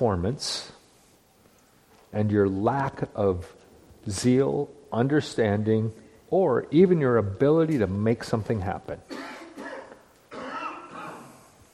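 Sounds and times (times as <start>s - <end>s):
speech: 0.0s - 0.8s, 2.1s - 9.2s
person coughing: 9.1s - 11.5s.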